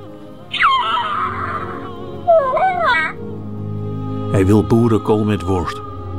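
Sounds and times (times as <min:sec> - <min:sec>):
electronic Baby Yoda toy making baby-like babble: 0:00.5 - 0:03.2
speech: 0:04.4 - 0:05.8.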